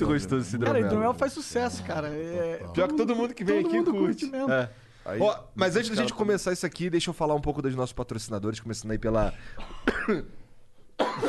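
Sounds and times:
speech: 0.0s - 10.4s, 11.1s - 11.2s
harsh coughs: 9.6s - 10.4s, 11.0s - 11.2s.

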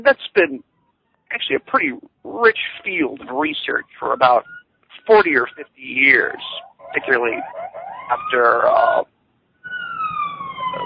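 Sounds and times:
speech: 0.0s - 0.7s, 1.3s - 9.1s
siren wailing in New York: 3.6s - 10.8s.

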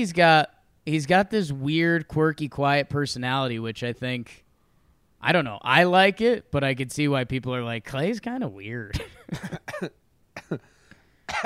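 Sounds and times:
speech: 0.0s - 4.4s, 5.2s - 10.7s, 11.3s - 11.4s
harsh raspy coughing fit: 8.9s - 11.4s.

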